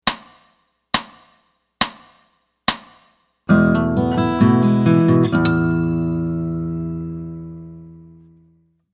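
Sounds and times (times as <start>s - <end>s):
open E chords played with fingers: 3.5s - 8.6s.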